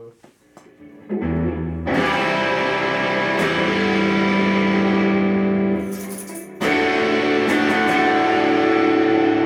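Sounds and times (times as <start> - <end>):
electric guitar with distortion effect pedal playing gritty chords: 0.4 - 9.4.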